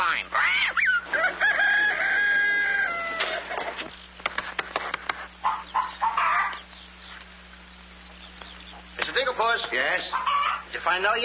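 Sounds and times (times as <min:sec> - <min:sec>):
speech: 0:00.1 - 0:00.6, 0:09.9 - 0:11.2
hens clucking and squawking in a busy henhouse: 0:00.4 - 0:08.9, 0:09.7 - 0:10.8
rooster crowing in henhouse: 0:01.0 - 0:03.6, 0:05.4 - 0:06.6, 0:10.1 - 0:10.7.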